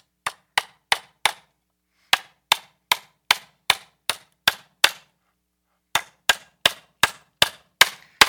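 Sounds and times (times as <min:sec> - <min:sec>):
hammer striking a nail: 0:00.2 - 0:01.5, 0:02.1 - 0:05.1, 0:05.9 - 0:08.2.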